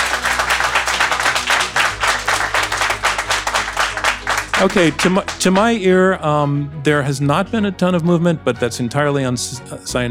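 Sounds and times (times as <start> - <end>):
audience applauding: 0.0 - 5.9
speech: 4.6 - 10.1.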